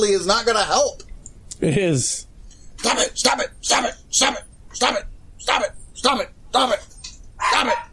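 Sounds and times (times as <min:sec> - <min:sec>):
speech: 0:00.0 - 0:01.0, 0:01.6 - 0:07.9
dog barking: 0:07.4 - 0:07.9.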